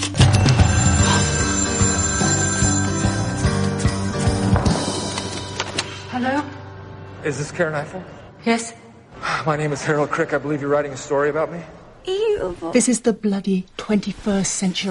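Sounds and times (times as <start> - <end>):
telephone ringing: 0.2 - 5.4
speech: 7.3 - 8.8, 9.4 - 14.8.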